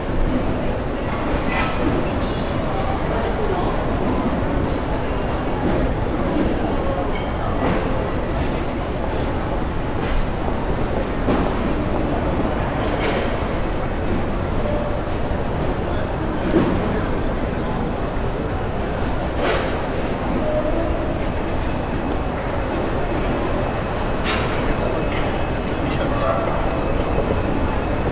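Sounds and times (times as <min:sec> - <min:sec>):
urban airport interior security checkpoint ambience: 0:00.0 - 0:28.0.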